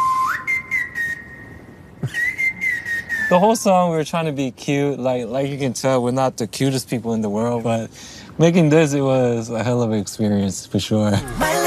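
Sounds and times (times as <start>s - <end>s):
whistled melody with long held notes: 0.0s - 3.4s
speech: 3.3s - 11.5s.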